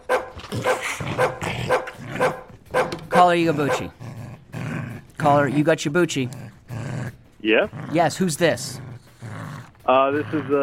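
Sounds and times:
slobbery dog barking: 0:00.0 - 0:04.0
speech: 0:03.2 - 0:04.0, 0:05.2 - 0:06.4, 0:07.4 - 0:08.8, 0:09.9 - 0:10.6.

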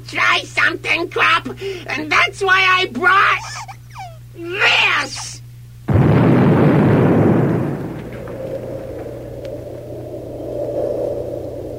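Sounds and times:
speech: 0:00.0 - 0:03.7, 0:04.4 - 0:05.3
steady droning hum: 0:00.0 - 0:11.7
laughter: 0:03.4 - 0:04.2
huge nuclear-style blast: 0:05.9 - 0:11.6
lingering low rumble after nuclear-style blast: 0:05.9 - 0:11.7.

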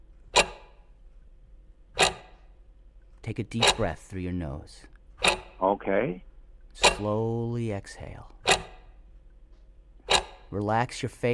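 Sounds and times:
faint hum: 0:00.0 - 0:11.3
clock ticking: 0:00.3 - 0:00.9, 0:01.9 - 0:02.6, 0:03.2 - 0:05.6, 0:06.8 - 0:09.1, 0:10.0 - 0:11.3
speech: 0:03.3 - 0:05.0, 0:05.6 - 0:08.4, 0:10.5 - 0:11.3.

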